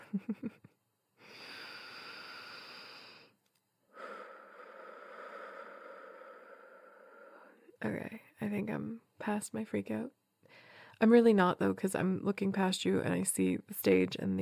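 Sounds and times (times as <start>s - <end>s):
speech: 0.1s - 0.7s, 7.8s - 14.3s
deep breath: 1.2s - 7.8s, 10.4s - 11.0s.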